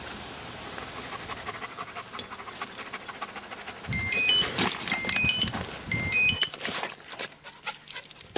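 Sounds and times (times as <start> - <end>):
stray dog panting: 0.8 - 4.1, 7.2 - 8.3
faint high beeping tones: 3.9 - 6.6.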